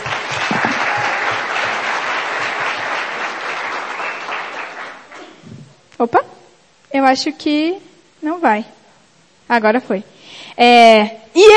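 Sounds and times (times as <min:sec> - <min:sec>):
audience applause: 0:00.0 - 0:05.3
speech: 0:06.0 - 0:06.3, 0:07.0 - 0:08.8, 0:09.5 - 0:11.5.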